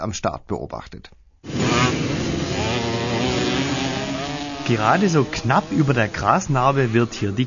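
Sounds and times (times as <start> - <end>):
speech: 0.0 - 2.2, 4.7 - 7.4
racing mopeds roaring past: 1.5 - 7.4.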